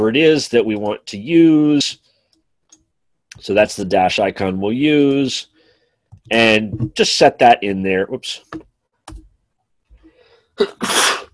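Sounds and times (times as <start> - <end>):
speech: 0.0 - 2.0, 3.4 - 5.5, 6.3 - 8.7, 10.6 - 11.2
person sneezing: 10.6 - 11.3.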